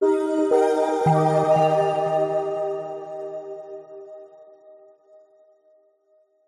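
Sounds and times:
short warm soft delayed corporate multimedia musical logo: 0.0 - 4.3.

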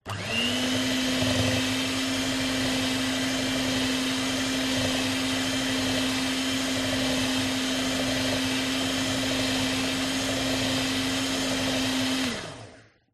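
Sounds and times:
electric whisk mixing: 0.0 - 13.0.

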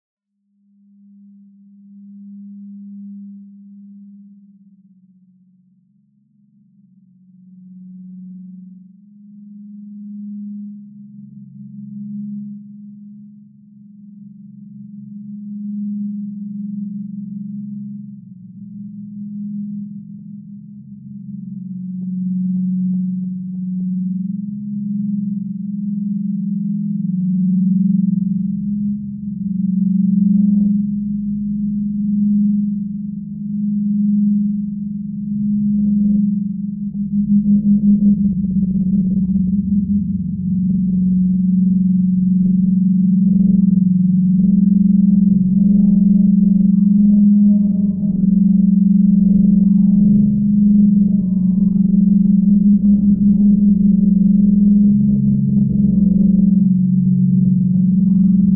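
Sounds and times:
rich vibrating dissonant sci-fi drone: 20.9 - 58.5.

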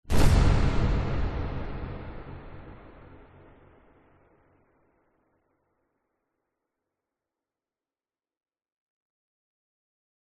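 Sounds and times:
loud bright airy cinematic hit boom: 0.1 - 4.1.

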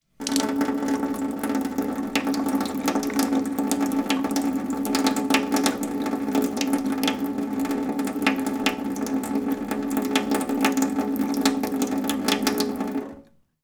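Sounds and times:
light household water trickle from tap into metal sink: 0.0 - 13.4.

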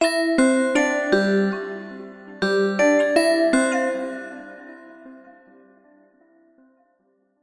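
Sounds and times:
synthesized musical bell chime with delayed space bells: 0.0 - 5.3.

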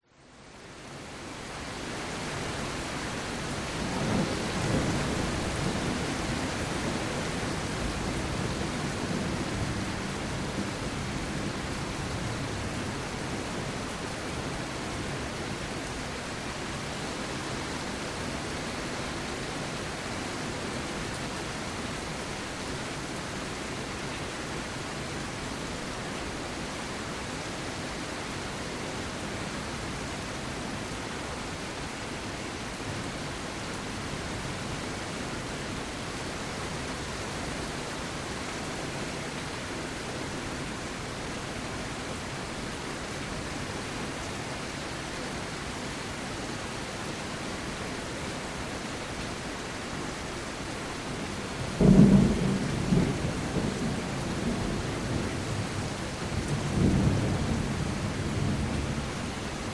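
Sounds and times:
rain heard through an open window at home: 0.0 - 59.7
low thunder rumbles: 51.8 - 59.1.

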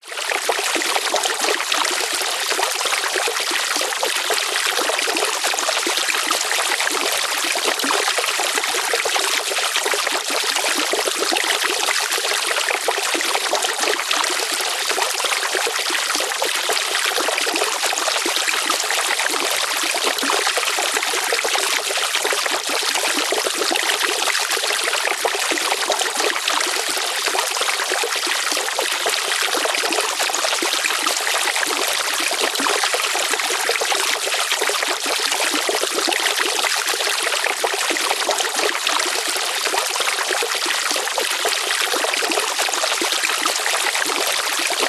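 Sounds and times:
light water pouring and flowing in nature: 0.0 - 44.8.

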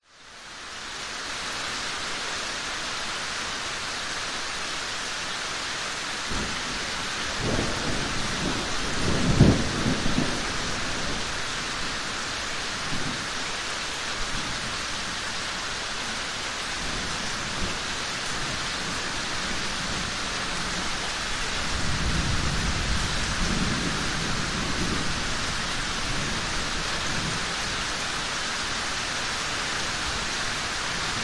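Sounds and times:
rain drips in a yard: 0.2 - 31.2
approaching thunderstorm: 6.3 - 13.3, 16.8 - 28.2.

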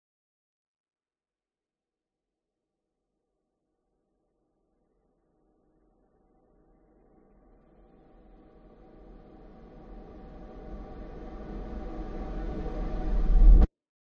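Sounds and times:
long dark eerie reversed horror riser: 9.6 - 13.7.

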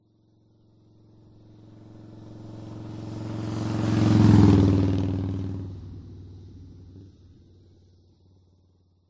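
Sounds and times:
motorcycle passing by at 60 kph: 0.9 - 7.6.

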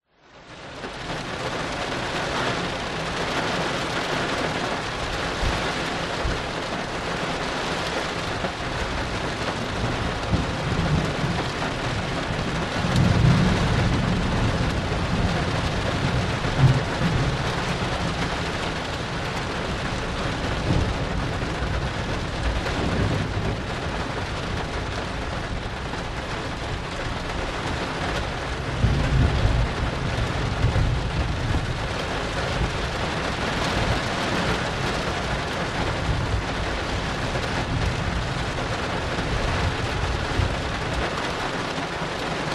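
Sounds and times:
rain outside heard from interior: 0.0 - 42.5
thunder outside: 8.4 - 26.0, 26.7 - 41.4.

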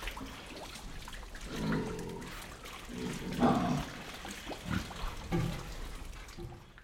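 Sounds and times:
pigs moving in wet mud inside a shed: 0.0 - 6.8
pig grunting in wet mud inside a shed: 1.4 - 5.8.

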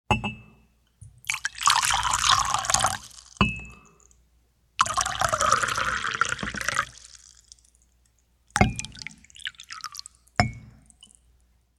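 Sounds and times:
tea pouring: 1.2 - 3.4, 4.8 - 7.9, 8.6 - 10.3.

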